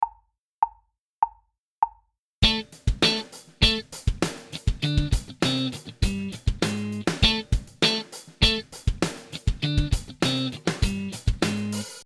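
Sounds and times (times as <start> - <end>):
funk guitar accenting octaves in A minor: 2.4 - 12.0.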